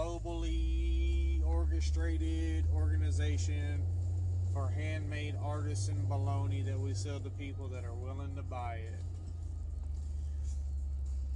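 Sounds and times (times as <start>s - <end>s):
car engine rumbling as the car pulls out onto a road: 0.0s - 11.3s
faint road and cabin noise: 0.0s - 11.3s
speech: 1.8s - 9.1s.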